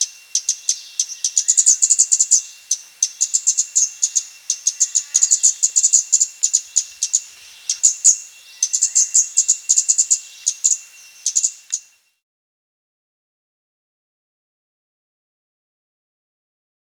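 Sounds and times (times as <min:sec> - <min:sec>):
scarlet-backed flowerpecker calling with sharp high ticking notes: 0:00.0 - 0:12.2.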